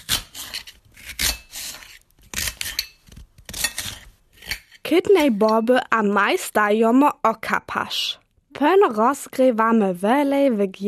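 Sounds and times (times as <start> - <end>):
knife peeling and finely chopping an onion: 0.0 - 5.5
speech: 4.9 - 10.8.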